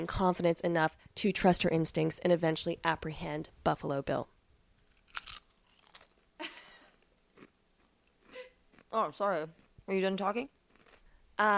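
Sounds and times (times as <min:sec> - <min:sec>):
speech: 0:00.0 - 0:04.3, 0:08.9 - 0:10.6, 0:11.4 - 0:11.5
crunchy chewing: 0:04.9 - 0:06.2, 0:06.9 - 0:08.9, 0:10.7 - 0:11.1.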